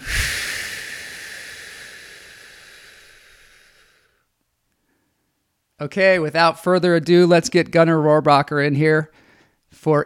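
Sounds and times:
slow deep exhale: 0.0s - 5.3s
speech: 5.8s - 10.0s.

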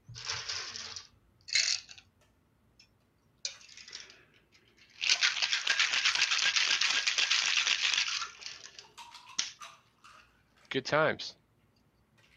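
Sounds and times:
cocktail shaker full of ice rattling as a drink is mixed: 0.1s - 2.0s, 3.5s - 10.3s
speech: 10.8s - 11.4s.

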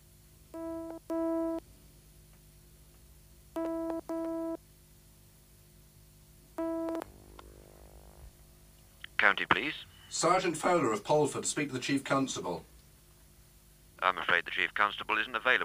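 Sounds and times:
faint hum: 0.0s - 15.6s
double telephone ringing tone on the line: 0.6s - 1.6s, 3.6s - 4.6s, 6.6s - 8.1s
speech: 9.3s - 12.7s, 14.0s - 15.6s.

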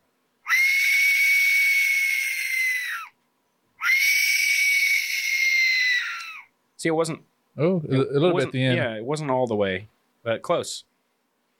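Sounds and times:
fantasy film creature shrieking: 0.5s - 3.2s, 3.8s - 6.5s
speech: 6.8s - 10.9s.

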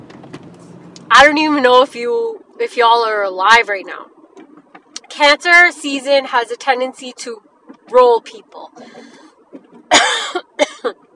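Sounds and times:
speech: 1.2s - 4.1s, 5.2s - 9.1s, 10.2s - 11.0s
harsh raspy elderly-sounding cough: 9.9s - 11.0s.

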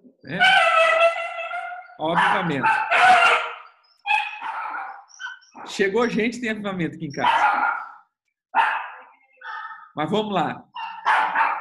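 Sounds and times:
speech: 0.3s - 0.6s, 2.0s - 3.3s, 5.8s - 7.6s, 10.0s - 10.7s
several dogs barking and yelping: 0.4s - 5.7s, 7.1s - 9.9s, 10.8s - 11.5s.

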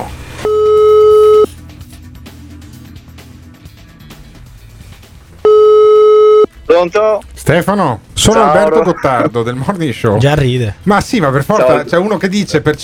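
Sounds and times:
telephone ringback tone while calling someone: 0.4s - 1.6s, 5.4s - 6.5s
speech: 6.8s - 12.8s.

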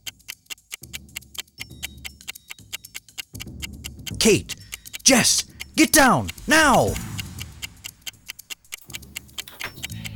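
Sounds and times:
rapid steady ticking: 0.0s - 10.1s
speech: 4.2s - 7.1s.

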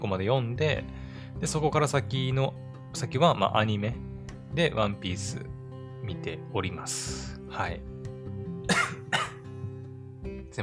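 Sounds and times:
speech: 0.0s - 7.9s
person coughing after COVID: 8.7s - 9.4s.

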